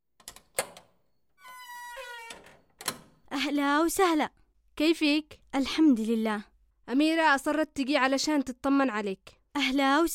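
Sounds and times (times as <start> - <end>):
sharp door latch clicks: 0.2 - 1.0, 1.9 - 3.3
tonal creak of a door hinge as the door swings open: 0.3 - 3.3
speech: 3.4 - 10.1.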